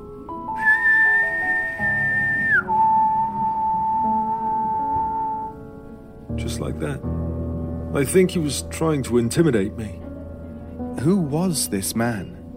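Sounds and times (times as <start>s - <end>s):
man imitating a whistle: 0.5s - 5.6s
speech: 6.6s - 7.3s, 7.9s - 10.0s, 11.0s - 12.4s.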